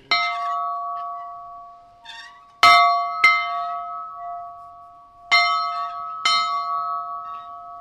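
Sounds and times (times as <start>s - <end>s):
old heirloom metal bell clanging: 0.0s - 7.7s.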